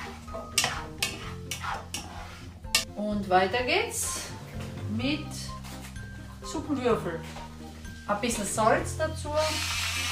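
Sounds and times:
spoon stirring carrots and butter in a soup pot: 0.0 - 2.9
speech: 3.0 - 4.3, 5.0 - 5.5, 6.5 - 7.4, 8.1 - 9.8.

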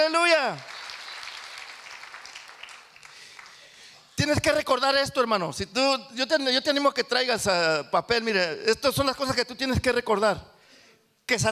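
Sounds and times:
speech: 0.0 - 0.8, 4.2 - 10.5, 11.3 - 11.5
church audience applauding: 0.5 - 4.0.

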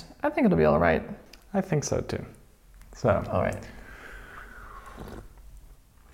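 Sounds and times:
speech: 0.2 - 2.4, 3.0 - 3.8, 5.0 - 5.3
person slurping a drink from a cup: 3.8 - 6.1.

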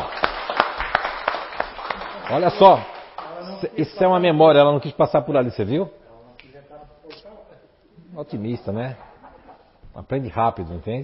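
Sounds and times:
steady rhythmic clapping: 0.0 - 4.7
laughter: 1.9 - 2.6, 8.7 - 9.8
speech: 2.3 - 2.9, 3.6 - 6.0, 8.2 - 9.1, 10.0 - 11.0.

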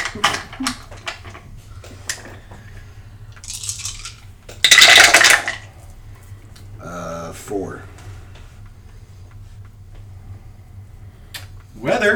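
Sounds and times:
clicks of small hard objects: 3.4 - 5.5
dice tumbling and clattering across a table: 3.4 - 5.6
speech: 12.0 - 12.1.

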